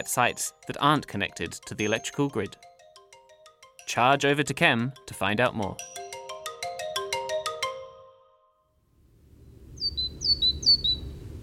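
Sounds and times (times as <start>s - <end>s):
speech: 0.0s - 2.7s, 3.9s - 6.0s
great tit calls: 9.8s - 11.3s.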